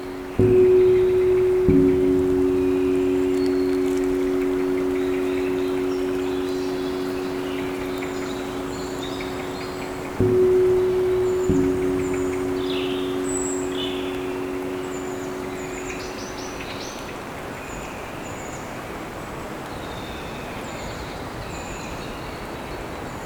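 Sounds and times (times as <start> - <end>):
low hum: 0.0 - 17.2
birds chirping in a forest on a cool grey day: 0.0 - 17.8.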